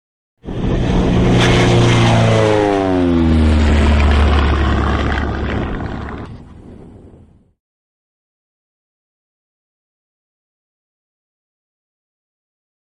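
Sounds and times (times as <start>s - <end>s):
airplane: 0.4s - 7.6s.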